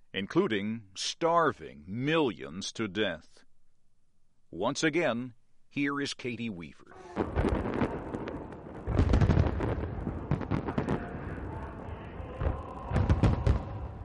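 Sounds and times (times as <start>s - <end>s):
speech: 0.2s - 3.4s, 4.5s - 7.6s
huge fireworks display booming at a celebration in Pyongyang: 7.0s - 14.0s.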